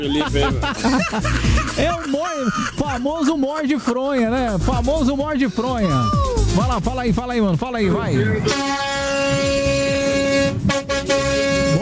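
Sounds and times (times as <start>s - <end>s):
laughter: 0.0s - 3.8s
speech: 0.0s - 9.6s
vehicle horn honking: 8.2s - 11.7s.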